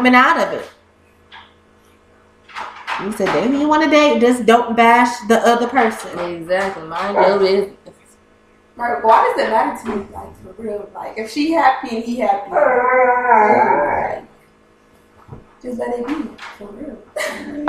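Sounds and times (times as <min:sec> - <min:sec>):
speech: 0:00.0 - 0:00.8, 0:03.0 - 0:07.9, 0:08.8 - 0:14.3, 0:15.3 - 0:17.6
dog howling: 0:07.0 - 0:07.7, 0:12.5 - 0:14.3.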